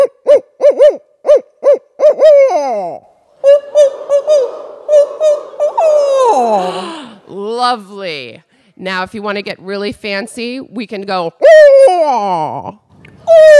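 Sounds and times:
second person imitating barred owl hooting pattern: 0:00.0 - 0:07.4, 0:13.2 - 0:13.5
person imitating barred owl rhythmic hooting series: 0:00.0 - 0:07.5, 0:11.4 - 0:13.5
speech: 0:07.7 - 0:12.8.

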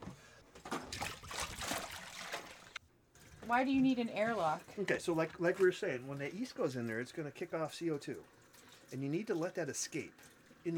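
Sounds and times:
water rinsing sanitizer out of a homebrewing sterilizer bucket: 0:00.7 - 0:03.4, 0:04.2 - 0:10.7
speech: 0:03.5 - 0:10.7.

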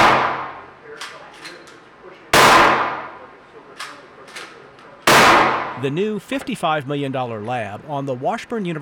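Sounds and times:
loud gunshots from weapons test-fired in a forensic gun lab: 0:00.0 - 0:00.7, 0:02.3 - 0:03.2, 0:05.1 - 0:05.8
speech: 0:05.8 - 0:08.8.

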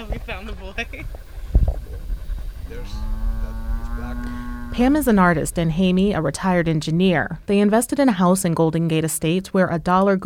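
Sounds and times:
speech: 0:00.2 - 0:01.4, 0:02.7 - 0:10.2
cow mooing: 0:02.7 - 0:06.8.

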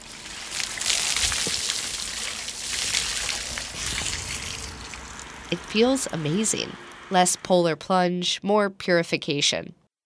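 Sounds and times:
bucket of cold water poured over someone's head outdoors: 0:00.0 - 0:05.6
speech: 0:05.5 - 0:09.8.

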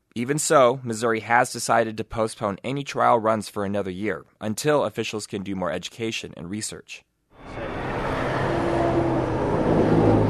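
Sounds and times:
speech: 0:00.2 - 0:07.6
highway traffic at night with cars passing a closed lane: 0:07.4 - 0:10.2
low humming drone: 0:07.4 - 0:10.2.

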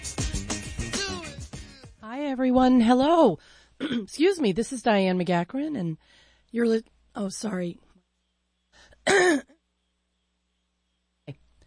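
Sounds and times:
speech: 0:02.3 - 0:07.8, 0:09.0 - 0:09.5
person clearing throat in short rasping bursts: 0:03.8 - 0:04.1, 0:09.1 - 0:09.6.

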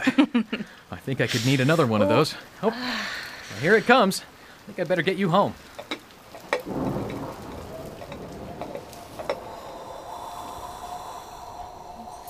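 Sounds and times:
heavy rain falling: 0:00.0 - 0:12.2
speech: 0:00.1 - 0:05.7
low rumbling: 0:06.3 - 0:12.2.

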